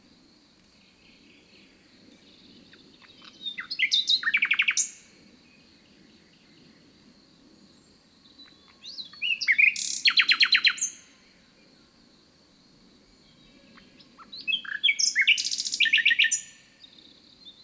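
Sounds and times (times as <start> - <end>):
common nightingale Luscinia megarhynchos singing: 0.8 - 6.7, 7.8 - 11.1, 13.2 - 17.6.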